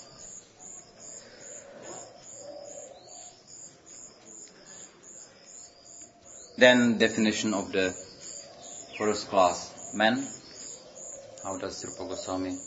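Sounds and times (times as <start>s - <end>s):
birds cooing: 0.0s - 12.6s
rhythmic high-pitched chirping: 0.0s - 12.6s
steady outdoor hum: 0.0s - 12.6s
speech: 6.6s - 8.0s, 9.0s - 10.4s, 11.4s - 12.6s.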